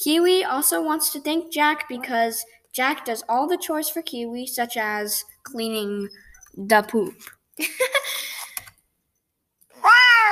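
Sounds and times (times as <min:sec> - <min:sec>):
speech: 0:00.0 - 0:08.4
male pet cat long drawn-out meow: 0:09.8 - 0:10.3.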